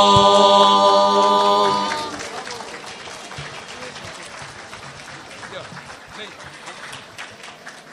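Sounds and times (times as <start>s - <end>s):
large audience applause after a performance: 0.1s - 7.8s.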